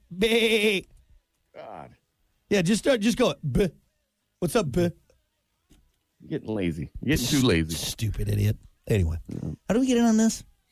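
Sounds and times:
person imitating a goat bleat: 0.1s - 0.9s
speech: 0.1s - 0.9s, 1.6s - 3.8s, 4.4s - 5.0s, 6.2s - 10.5s.

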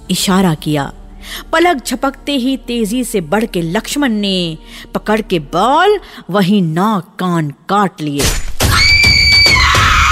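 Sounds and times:
speech: 0.1s - 8.4s
woman screaming in pain: 8.7s - 10.1s.

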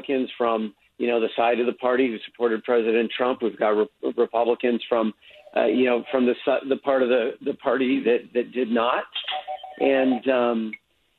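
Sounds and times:
speech: 0.0s - 10.8s
telephone ringing: 9.2s - 10.4s.

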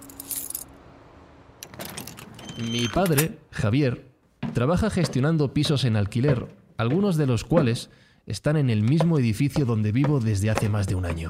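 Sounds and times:
keys jangling: 0.0s - 0.7s, 1.6s - 3.3s
speech: 2.6s - 11.2s.

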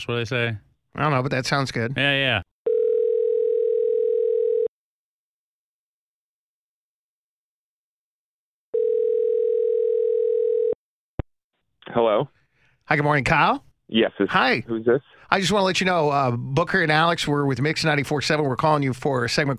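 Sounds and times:
speech: 0.0s - 2.5s, 11.9s - 19.5s
telephone ringback tone while a call is placed: 2.7s - 4.7s, 8.8s - 10.8s.

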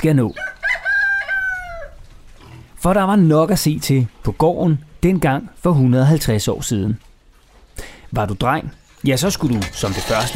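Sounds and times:
speech: 0.0s - 0.4s, 2.8s - 7.1s, 7.8s - 10.3s
rooster crowing: 0.4s - 2.0s.

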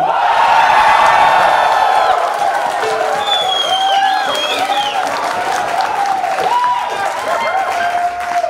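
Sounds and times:
live audience cheering and whooping to vote for a contest entry: 0.0s - 8.4s
scattered clapping: 0.6s - 8.4s
shrill whistling calls: 2.8s - 5.6s.

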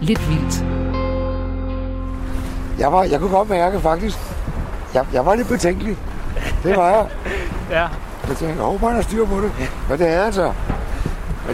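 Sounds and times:
speech: 0.0s - 0.8s, 2.8s - 10.8s
waves and wind around the hull of a small sailing dinghy on choppy water: 2.1s - 11.5s
laughter: 6.2s - 8.0s.

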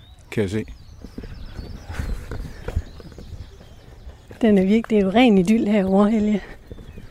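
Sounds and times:
speech: 0.3s - 1.2s, 4.4s - 6.5s
horse hooves clopping on a hard road: 0.3s - 7.1s
horse-drawn wagon wheels rumbling: 0.8s - 7.1s.

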